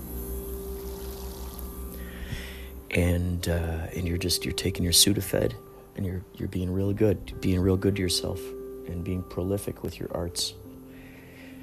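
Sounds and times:
steady electrical buzz: 0.0 - 8.2
speech: 2.9 - 10.6.

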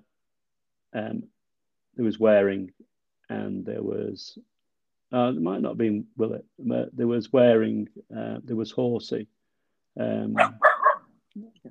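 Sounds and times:
speech: 0.9 - 1.4, 2.0 - 4.5, 5.1 - 9.4, 10.0 - 10.7, 11.4 - 11.6
dog barking: 10.4 - 11.1.

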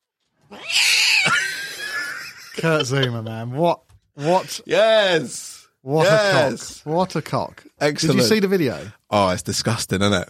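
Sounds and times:
cat yowling loudly and harshly: 0.5 - 1.8
laughter: 1.2 - 3.4
speech: 2.6 - 10.2.

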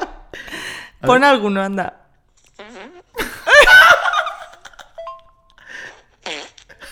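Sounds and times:
speech: 1.0 - 2.0
loud sputtering fart and squeaky toots: 2.4 - 3.2, 5.9 - 6.9
giggly laughter: 3.2 - 5.2.

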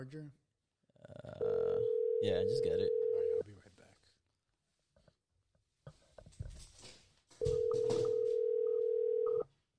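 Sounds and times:
speech: 0.0 - 0.4, 1.0 - 3.0
phone ringing tone: 1.4 - 3.4, 7.4 - 9.5.

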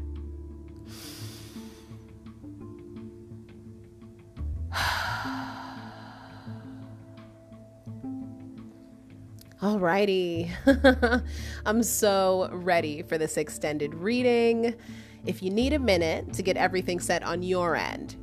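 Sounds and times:
person taking a deep breath: 0.9 - 2.0, 4.7 - 7.1
speech: 9.6 - 18.2.

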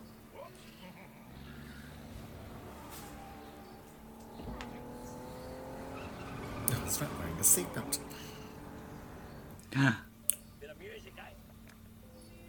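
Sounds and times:
truck engine revving past: 0.6 - 9.7
speech: 7.0 - 8.4, 9.8 - 10.1.

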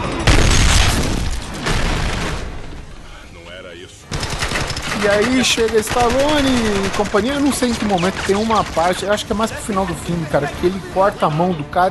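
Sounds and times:
booming movie-style gunfire from a film soundtrack: 0.0 - 2.9, 4.1 - 9.4
speech: 5.0 - 11.8.

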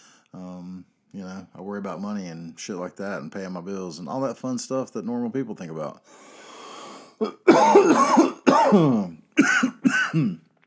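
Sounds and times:
speech: 0.3 - 6.4, 7.2 - 10.5
harsh phlegmy coughing: 7.2 - 10.5
throat clearing: 7.2 - 10.5.

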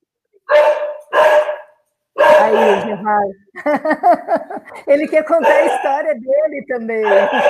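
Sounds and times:
dog barking: 0.5 - 3.0, 5.3 - 6.1, 7.0 - 7.4
speech: 2.5 - 7.4
laughter: 3.6 - 6.0.

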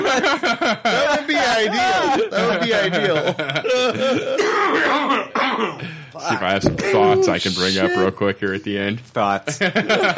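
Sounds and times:
laughter: 0.0 - 5.4, 9.5 - 10.1
speech: 2.8 - 10.1
person coughing and clearing throat: 3.7 - 6.0.

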